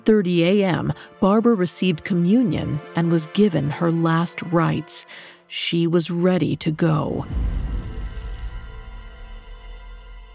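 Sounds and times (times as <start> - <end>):
speech: 0.0 - 7.7
old-fashioned telephone bell ringing: 7.4 - 10.3.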